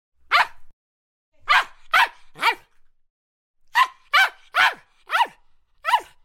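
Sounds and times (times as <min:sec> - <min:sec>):
poodle yapping in high sharp barks: 0:01.5 - 0:02.7, 0:03.7 - 0:06.2.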